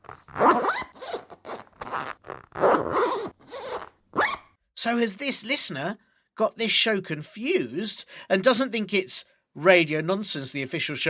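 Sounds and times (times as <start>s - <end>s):
broken jacket zip being pulled: 0.0s - 4.5s
speech: 4.8s - 11.0s.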